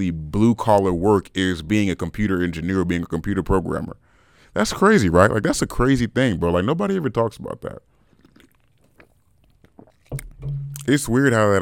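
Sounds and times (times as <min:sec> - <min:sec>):
speech: 0:00.0 - 0:07.9, 0:10.1 - 0:11.6
person slurping energy drink from a freshly opened can: 0:08.2 - 0:10.3
thud: 0:10.2 - 0:10.9.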